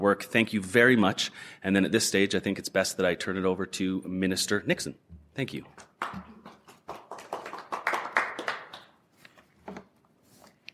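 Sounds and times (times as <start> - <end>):
speech: 0.0 - 6.3
applause from a small group: 5.7 - 9.0.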